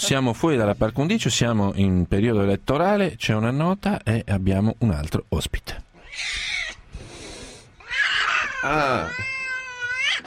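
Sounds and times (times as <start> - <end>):
speech: 0.0 - 6.4, 8.6 - 9.4
pet cat meowing: 6.0 - 6.8, 7.8 - 10.2.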